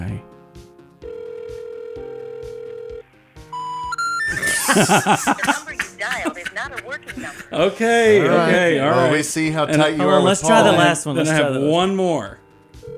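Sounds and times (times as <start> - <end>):
phone line ringback tone on an outgoing call: 1.0 - 4.6, 12.8 - 12.9
quick rising beeps on a phone line: 3.5 - 4.6
laughter: 4.3 - 9.2
speech: 4.7 - 12.4
recorded-sounding voice speaking over a phone line: 5.2 - 7.1, 8.5 - 11.2.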